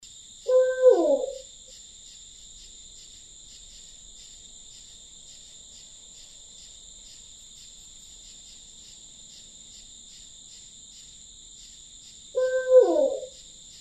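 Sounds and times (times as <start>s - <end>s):
Strix varia calling: 0.5s - 1.5s, 12.4s - 13.4s.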